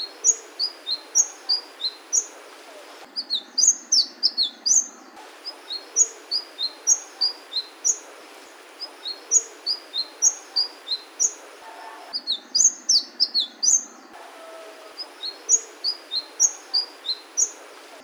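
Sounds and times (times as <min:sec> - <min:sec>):
sunbird song: 0:00.0 - 0:18.0.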